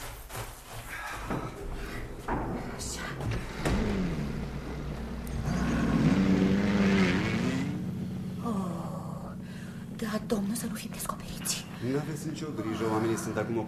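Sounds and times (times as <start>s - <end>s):
clunks and thuds: 0.4s - 5.8s
car engine idling outside: 1.8s - 13.6s
speech: 10.1s - 13.6s.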